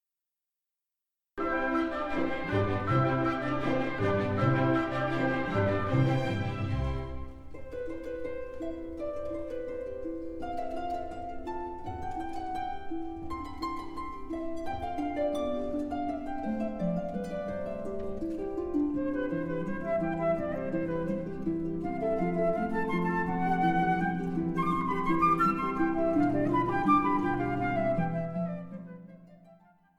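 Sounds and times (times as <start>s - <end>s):
flute in C: 1.4s - 7.3s, 18.9s - 29.9s
harp in C: 1.4s - 29.9s.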